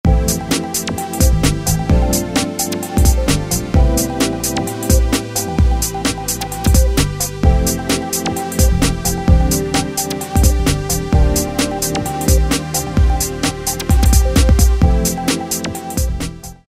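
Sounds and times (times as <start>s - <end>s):
2-step beat on Roland D2: 0.0s - 16.6s.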